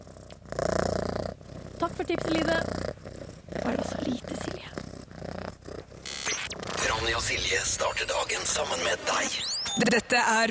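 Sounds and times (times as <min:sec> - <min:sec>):
cat purring: 0:00.0 - 0:09.4
speech: 0:02.0 - 0:02.8, 0:04.0 - 0:04.6, 0:07.1 - 0:10.4.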